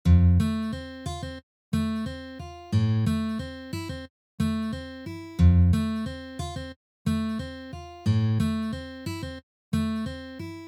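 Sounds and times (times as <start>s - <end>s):
fingerpicked guitar chorus: 0.1s - 10.6s.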